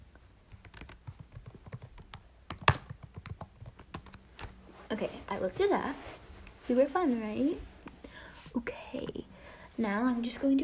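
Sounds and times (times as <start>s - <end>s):
typing on a computer keyboard: 0.5s - 4.2s
speech: 4.9s - 7.7s, 8.6s - 9.2s, 9.8s - 10.6s.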